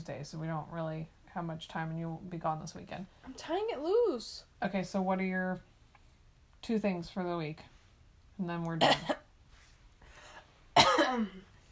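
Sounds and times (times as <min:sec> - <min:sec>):
speech: 0:00.0 - 0:05.7, 0:06.6 - 0:07.7, 0:08.4 - 0:09.2, 0:11.2 - 0:11.5
single sharp cough: 0:08.8 - 0:09.2, 0:10.8 - 0:11.4.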